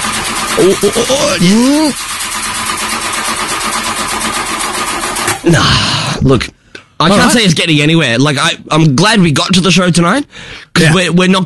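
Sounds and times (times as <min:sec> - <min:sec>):
car engine cranking and failing to start: 0:00.0 - 0:05.4
speech: 0:00.6 - 0:02.4, 0:05.4 - 0:11.4.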